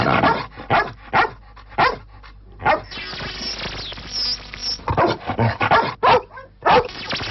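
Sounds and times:
dog barking in recorded bark samples: 0.1s - 2.0s, 2.6s - 2.9s, 4.9s - 6.9s.

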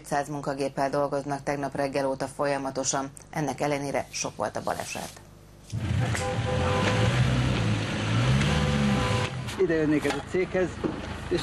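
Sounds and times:
speech: 0.0s - 7.1s, 9.6s - 11.4s
minibus engine revving on snowy slope: 5.7s - 9.6s.

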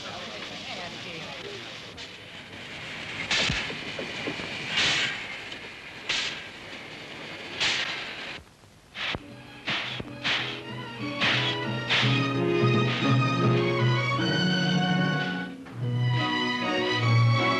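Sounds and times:
faint voices: 0.0s - 3.0s
train clatter and hiss: 0.0s - 13.8s
fast train pulling into a station platform: 0.0s - 17.5s.

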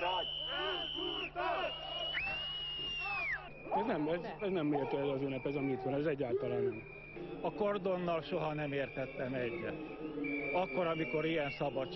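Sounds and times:
large crowd chanting slogans: 0.0s - 2.6s, 6.4s - 11.9s
shrill sustained whistles blown by crowd: 0.0s - 11.9s
speech: 3.8s - 11.9s.

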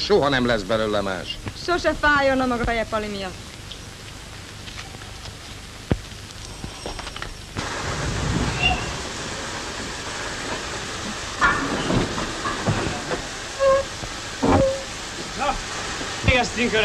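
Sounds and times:
small locomotive hissing and rumbling while shunting cattle wagons: 0.0s - 16.8s
speech: 0.1s - 3.5s, 16.6s - 16.8s
brief squeals: 8.5s - 9.0s, 13.6s - 14.9s
metallic clanks of shunted cattle wagons: 10.5s - 15.0s.

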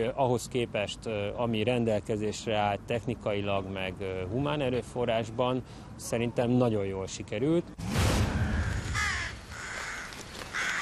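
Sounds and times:
speech: 0.0s - 7.9s
several crows cawing at a nesting colony: 8.5s - 10.8s
busy background of other birds: 8.6s - 10.8s.

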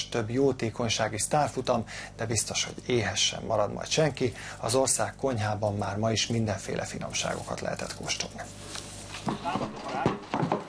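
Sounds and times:
speech: 0.0s - 10.6s
horse hooves clip-clopping as horses arrive for a gallop race: 9.2s - 10.6s.

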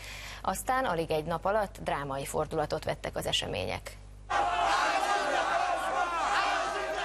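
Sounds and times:
speech: 0.4s - 4.0s
large protest crowd in Tahrir Square Cairo Egypt cheering and chanting: 4.3s - 7.0s.

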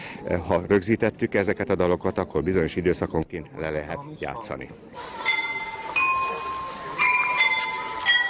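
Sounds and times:
speech: 0.2s - 5.3s
gong chime clock playing a melody: 5.2s - 8.2s.

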